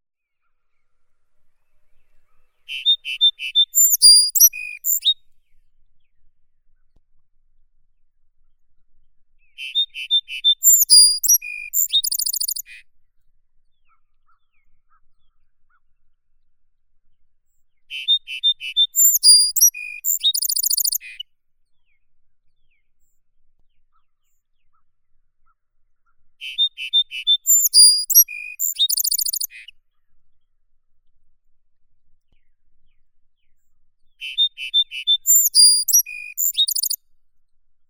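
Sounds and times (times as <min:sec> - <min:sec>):
song sparrow Melospiza melodia: 0:02.7 - 0:05.2, 0:09.6 - 0:12.8, 0:18.0 - 0:21.2, 0:26.4 - 0:29.7, 0:34.2 - 0:37.0.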